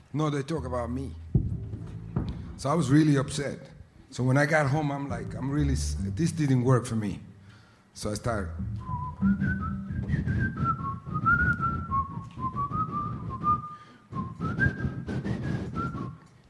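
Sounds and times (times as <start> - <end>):
speech: 0.1 - 1.2, 2.6 - 7.3, 8.0 - 9.5
person whistling a lilting melody: 8.6 - 16.3.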